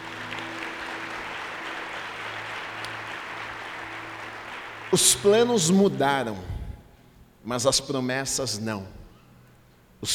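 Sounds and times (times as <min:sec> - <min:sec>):
audience applauding: 0:00.0 - 0:05.9
speech: 0:04.9 - 0:06.6, 0:07.4 - 0:09.0.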